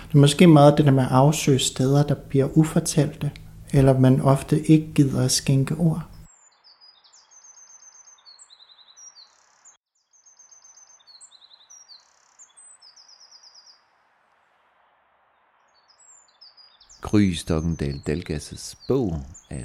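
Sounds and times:
background hiss: 0:00.0 - 0:06.3, 0:16.9 - 0:19.6
Eurasian wren song: 0:00.0 - 0:14.0, 0:15.7 - 0:19.6
speech: 0:00.1 - 0:06.1, 0:17.1 - 0:19.6.

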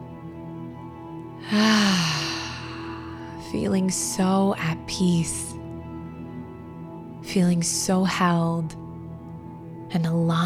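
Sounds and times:
soft steady sustained tone: 0:00.0 - 0:10.4
speech: 0:01.4 - 0:02.1, 0:03.5 - 0:05.6, 0:07.3 - 0:08.8, 0:09.9 - 0:10.4
person taking a deep breath in during a guided grounding meditation: 0:01.4 - 0:03.4.

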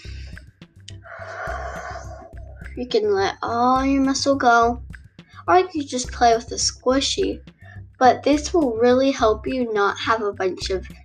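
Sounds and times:
deep breath in and out: 0:00.0 - 0:02.6, 0:07.5 - 0:08.0
speech: 0:02.8 - 0:04.9, 0:05.5 - 0:11.0.

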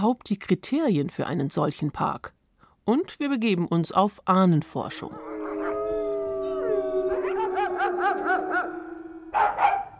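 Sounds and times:
speech: 0:00.0 - 0:05.3
wolves howling in chorus: 0:05.1 - 0:09.9.

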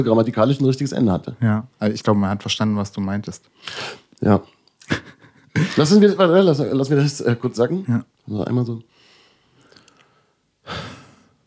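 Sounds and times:
speech: 0:00.0 - 0:08.9
laughter: 0:04.8 - 0:06.1
single soft airy breath: 0:08.9 - 0:11.4.

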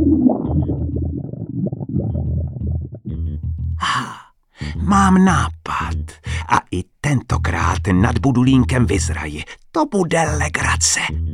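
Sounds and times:
stomach rumbling: 0:00.0 - 0:03.1
speech: 0:04.8 - 0:11.3.

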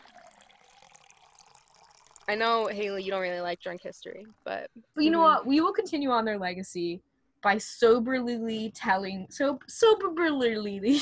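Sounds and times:
liquid pouring in a splashy stream: 0:00.0 - 0:04.7
speech: 0:02.3 - 0:10.9.

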